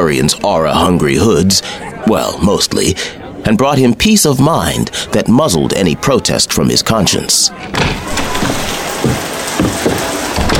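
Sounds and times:
speech: 0.0 - 8.8
rain pouring down: 8.0 - 10.5.

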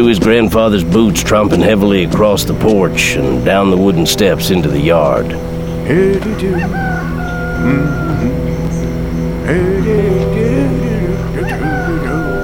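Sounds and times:
speech: 0.0 - 7.0, 7.6 - 8.4, 9.5 - 10.6
noisy barnyard background: 0.0 - 12.4
other animal sounds: 0.0 - 12.4
rooster crowing: 6.4 - 9.0, 10.5 - 12.4.

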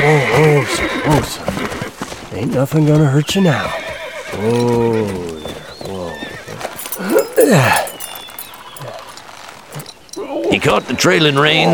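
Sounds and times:
speech: 0.1 - 3.8, 4.4 - 5.3, 7.5 - 7.9, 10.6 - 11.7
dun horse whinnying: 3.7 - 4.6.

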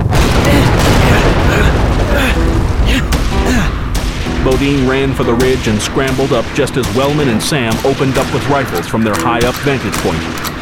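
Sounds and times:
blasting charges exploding at a frontier fort: 0.0 - 6.7
speech: 4.6 - 10.5.

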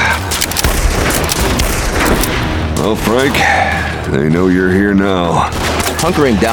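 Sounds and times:
gunfire from Winchester rifles in a rocky valley: 0.6 - 2.6
speech: 2.9 - 6.5.

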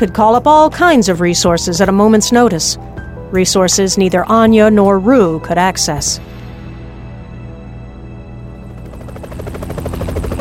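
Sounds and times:
speech: 0.0 - 6.3
black helicopter engine roar: 8.1 - 10.3
black helicopter rotor blades thumping: 8.5 - 10.3.

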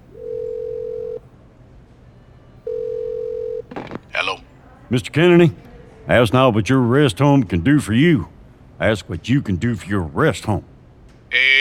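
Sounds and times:
telephone line tone while dialing another room: 0.0 - 1.3, 2.7 - 3.7
speech: 3.8 - 10.7.

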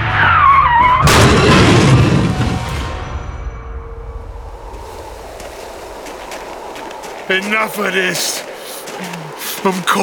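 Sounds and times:
car skidding sideways on a snowy road through an intersection: 0.0 - 2.3
speech: 7.3 - 10.0.

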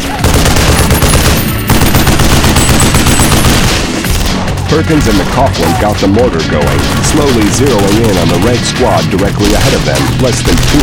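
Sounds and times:
machine gun fire in a battle: 0.1 - 4.5, 6.7 - 10.8
speech: 4.8 - 10.8.

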